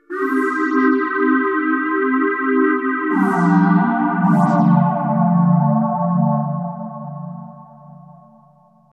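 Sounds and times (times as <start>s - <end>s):
ambient synth pad in C: 0.0s - 8.4s.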